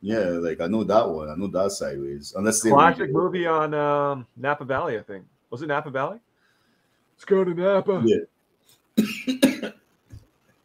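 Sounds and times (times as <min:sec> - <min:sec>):
speech: 0:00.0 - 0:06.3, 0:07.2 - 0:08.3, 0:09.0 - 0:09.8
harsh coughs: 0:09.0 - 0:09.8.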